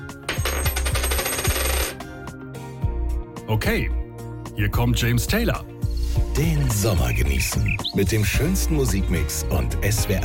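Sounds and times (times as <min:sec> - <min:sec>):
tossed coin landing and bouncing on a hard surface: 0:00.3 - 0:02.0
speech: 0:03.5 - 0:04.0, 0:04.6 - 0:05.7, 0:06.4 - 0:10.2.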